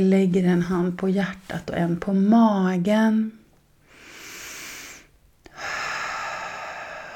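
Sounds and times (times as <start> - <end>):
speech: 0.0 - 3.4
slow deep inhale through the nose: 3.8 - 7.1
long sighing exhale: 3.9 - 7.1.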